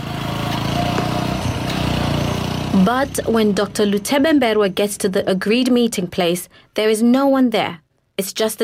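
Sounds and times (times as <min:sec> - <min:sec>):
motorcycle engine running: 0:00.0 - 0:06.2
speech: 0:02.8 - 0:08.6.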